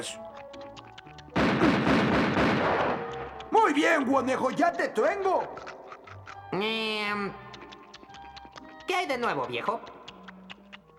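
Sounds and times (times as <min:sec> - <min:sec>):
speech: 0:00.0 - 0:00.4, 0:03.7 - 0:05.8, 0:06.5 - 0:07.5, 0:08.9 - 0:10.0
cartoon gunshot fired at a rabbit: 0:01.4 - 0:03.1.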